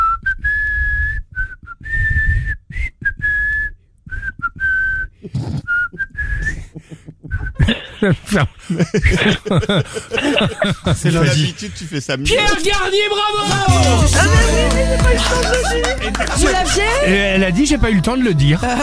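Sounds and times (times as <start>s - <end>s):
person whistling a lively tune: 0.0s - 6.7s
person chuckling: 5.2s - 12.3s, 14.3s - 17.2s
speech: 8.0s - 18.8s.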